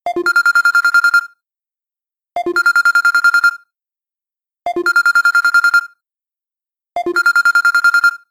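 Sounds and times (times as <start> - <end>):
Samsung Galaxy S2 basic bell ringtone: 0.1 - 1.4, 2.4 - 3.6, 4.8 - 6.0, 7.0 - 8.2.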